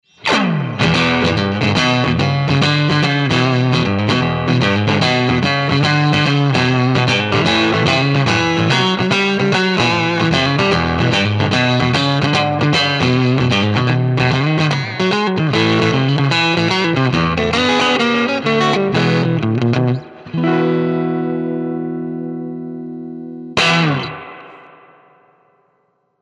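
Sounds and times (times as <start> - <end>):
Stratocaster electric guitar playing blues with 6L6: 0.2 - 24.8.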